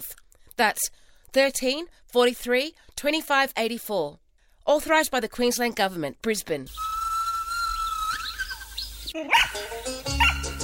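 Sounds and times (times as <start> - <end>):
speech: 0.0 - 7.0, 9.1 - 9.7
steady high whistling tone: 6.7 - 9.2
small dog barking excitedly with high yips: 7.8 - 10.5.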